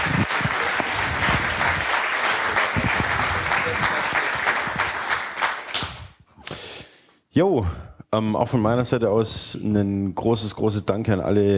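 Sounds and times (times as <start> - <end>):
audience applause: 0.0 - 6.1
speech: 7.4 - 11.5.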